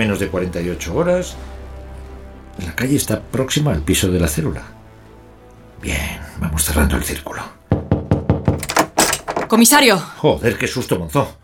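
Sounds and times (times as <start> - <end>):
speech: 0.0 - 1.6, 2.6 - 4.8, 5.8 - 7.6, 9.5 - 11.4
firm knocks on a door: 7.7 - 9.6.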